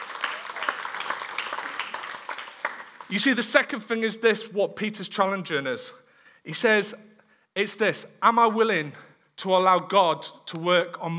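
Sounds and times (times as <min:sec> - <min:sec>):
church congregation clapping: 0:00.0 - 0:03.6
speech: 0:03.1 - 0:11.1.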